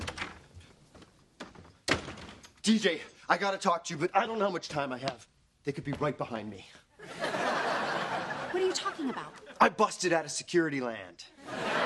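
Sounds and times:
door opening with dull knocks and rattles: 0.0s - 0.7s, 1.4s - 2.6s
speech: 2.6s - 7.2s, 8.6s - 11.8s
laughter: 7.0s - 9.7s, 11.4s - 11.8s.

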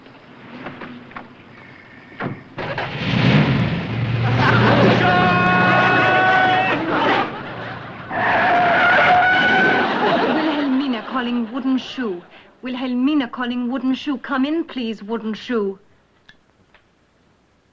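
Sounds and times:
car pulling away with a rising roar: 1.6s - 8.4s
car tires skidding: 2.4s - 10.2s
car engine starting and revving: 2.6s - 8.7s
laughter: 4.2s - 12.4s
speech: 13.4s - 15.9s.

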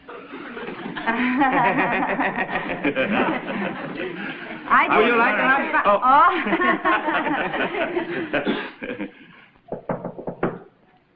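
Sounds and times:
people laughing: 0.0s - 9.4s
speech: 1.0s - 9.2s
sharp raps on a door: 9.7s - 10.7s.

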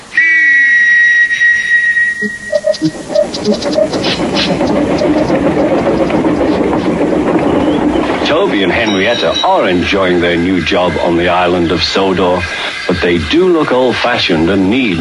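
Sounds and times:
loud wet steam train whistle: 0.0s - 3.6s
train chuffing and rumbling while moving along: 1.2s - 14.9s
speech: 3.4s - 5.0s, 8.6s - 14.9s.

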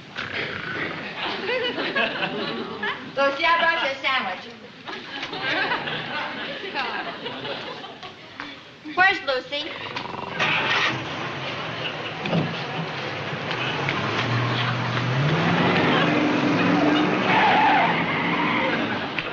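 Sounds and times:
laughter: 0.8s - 9.0s, 9.7s - 19.3s
car engine revving and accelerating away: 9.9s - 19.2s
car tires skidding: 10.0s - 19.3s.

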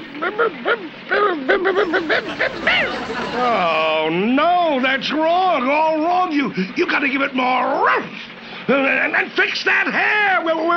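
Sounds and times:
person imitating a dog with short high yapping barks: 0.0s - 3.7s
laughter: 0.0s - 5.2s
speech: 0.2s - 10.7s.

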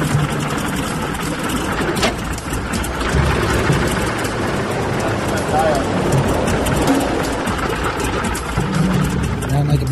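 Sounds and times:
large piston aircraft engine running rough and coughing: 0.0s - 9.9s.

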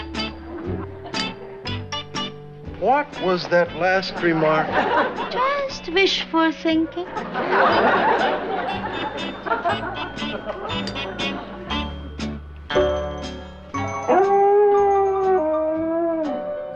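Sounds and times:
laughter: 0.2s - 1.6s, 4.1s - 5.7s, 6.8s - 11.9s
speech: 2.8s - 11.6s
female dog howling outside: 14.1s - 16.4s.

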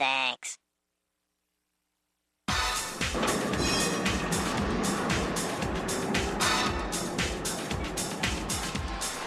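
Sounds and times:
subway train rumbling: 3.1s - 9.2s
subway train wheels clattering over track joints: 3.1s - 9.2s.

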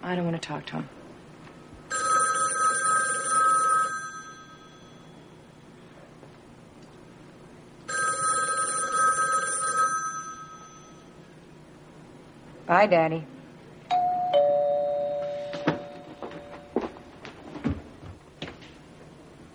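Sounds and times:
speech: 0.0s - 1.0s, 12.7s - 13.3s
old-style telephone bell ringing: 1.9s - 5.4s, 7.9s - 11.1s, 13.9s - 16.8s.

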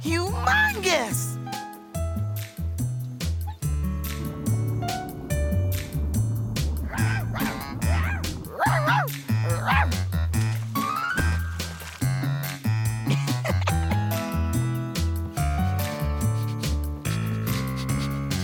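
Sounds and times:
speech: 0.0s - 1.4s
bouncy music: 0.0s - 18.4s
dog yipping barks: 6.9s - 10.0s.

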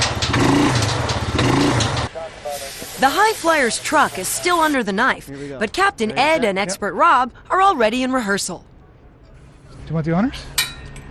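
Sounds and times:
four-wheeler engine revving: 0.0s - 2.1s
speech: 3.0s - 8.7s, 9.9s - 10.6s.

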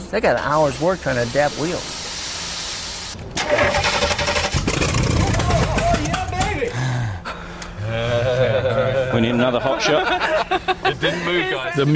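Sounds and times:
speech: 0.1s - 2.0s, 9.2s - 11.9s
engine cranking and failing to start: 3.4s - 6.5s
laughter: 7.9s - 11.9s.

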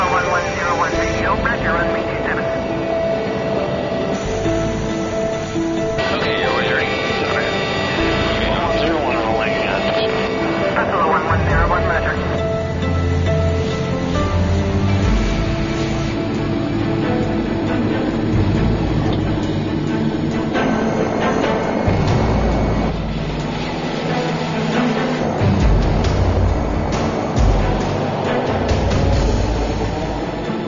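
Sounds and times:
voices: 0.0s - 2.7s, 6.0s - 12.4s
airplane engines taxiing for departure: 0.0s - 30.6s.

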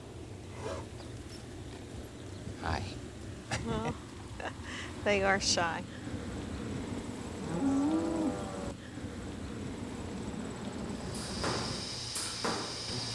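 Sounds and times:
steady barn hum: 0.0s - 13.1s
speech: 3.6s - 6.0s
cow mooing in a barn: 7.4s - 8.8s.

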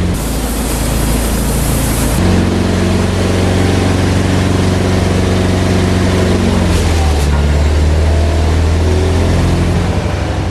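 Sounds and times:
hydraulic system hiss: 0.0s - 2.2s
engine driving a hydraulic pump for lifting rams: 0.0s - 10.4s.

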